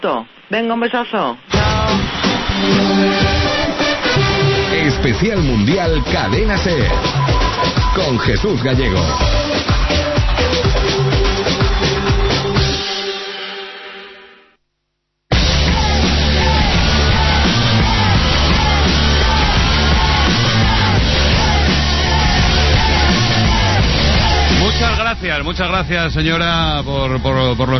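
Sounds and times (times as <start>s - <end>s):
speech: 0.0s - 3.2s, 4.8s - 9.4s, 25.2s - 27.7s
loud stadium public address system booming: 0.0s - 9.4s, 15.4s - 27.7s
dense stadium crowd noise: 1.5s - 12.8s, 15.3s - 27.7s.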